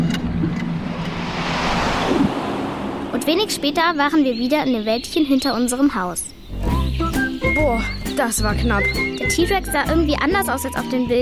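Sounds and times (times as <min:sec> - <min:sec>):
low rumbling undertone: 0:00.0 - 0:05.7
rushing wind through time tunnel: 0:00.0 - 0:06.6
speech: 0:03.2 - 0:06.4, 0:07.6 - 0:11.2.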